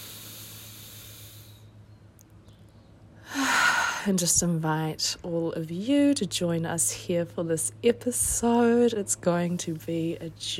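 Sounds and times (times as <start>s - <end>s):
slow deep breath: 0.0s - 1.8s
speech: 4.0s - 10.5s.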